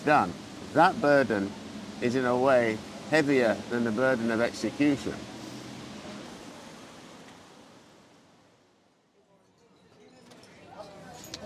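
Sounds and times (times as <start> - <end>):
speech: 0.0 - 5.3
open-air noise on outdoor café terrace in Paris: 0.0 - 11.4.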